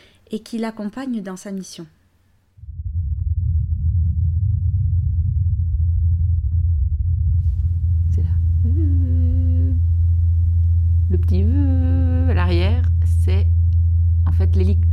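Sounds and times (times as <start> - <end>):
speech: 0.3 - 2.0
higher tonal sweeps rising and falling: 2.6 - 14.9
windy rumble on Mars: 2.6 - 14.9
faint distant Mars helicopter rotors droning in flight on Mars: 4.8 - 14.9.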